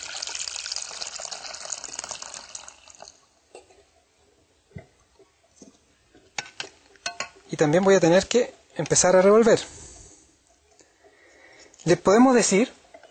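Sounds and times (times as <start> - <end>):
water pouring into a cooking pot holding powdered soy milk: 0.0 - 3.4
water dripping: 0.0 - 13.0
speech: 7.6 - 9.8, 11.9 - 12.8.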